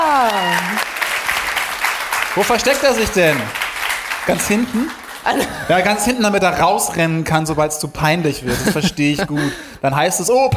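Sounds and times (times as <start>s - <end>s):
audience applause: 0.0s - 6.7s
speech: 2.4s - 3.6s, 4.2s - 10.5s
laughter: 8.4s - 9.6s.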